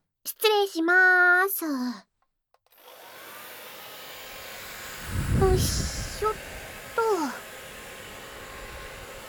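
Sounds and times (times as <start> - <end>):
speech: 0.2 - 2.1, 5.5 - 6.5
hair dryer drying hair after a bath: 2.7 - 9.2.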